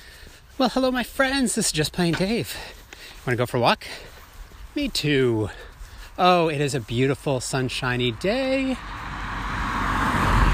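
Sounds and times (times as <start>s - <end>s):
speech: 0.6s - 4.1s, 4.8s - 9.0s
steady roar of road traffic: 4.3s - 10.5s
car speeding past: 8.8s - 10.5s.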